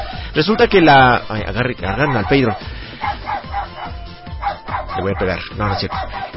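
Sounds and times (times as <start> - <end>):
speech: 0.4 - 2.8, 5.0 - 6.3
dog barking excitedly with short yappy barks: 1.8 - 6.3.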